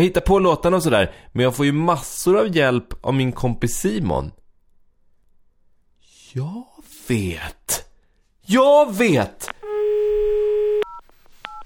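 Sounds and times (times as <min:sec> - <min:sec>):
speech: 0:00.0 - 0:04.4, 0:06.3 - 0:07.9, 0:08.5 - 0:09.5
telephone dial tone: 0:09.6 - 0:11.6.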